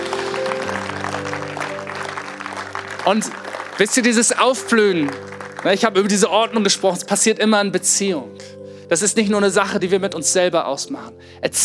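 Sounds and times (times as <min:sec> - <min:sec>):
audience applause: 0:00.0 - 0:06.3
soft sustained musical chord: 0:00.0 - 0:08.7
speech: 0:03.1 - 0:11.6.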